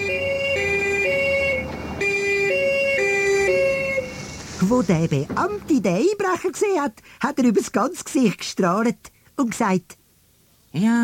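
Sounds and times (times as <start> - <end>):
two-tone police car siren wailing: 0.0 - 4.6
speech: 4.7 - 10.0, 10.7 - 11.0.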